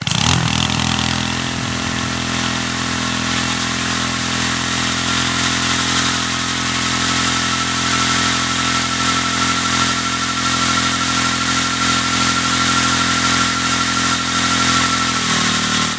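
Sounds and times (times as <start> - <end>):
acceleration: 0.0 - 15.9.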